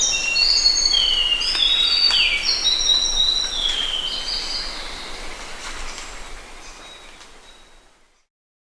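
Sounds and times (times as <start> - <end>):
White-browed shortwing singing high whistles and slurred notes: 0.0 - 5.1.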